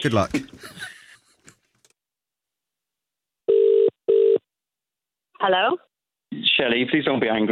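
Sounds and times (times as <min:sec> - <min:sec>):
speech: 0:00.0 - 0:00.8, 0:05.4 - 0:07.5
laughter: 0:00.4 - 0:01.6
phone line ringback tone through earpiece: 0:03.5 - 0:04.4.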